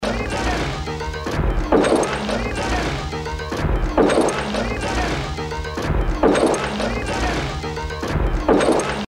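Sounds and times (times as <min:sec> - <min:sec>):
musical effects loop: 0:00.0 - 0:09.0.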